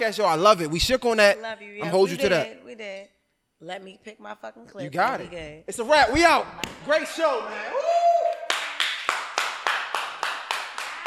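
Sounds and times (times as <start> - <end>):
speech: 0.0 - 8.0
single pair of hands clapping: 8.2 - 11.0.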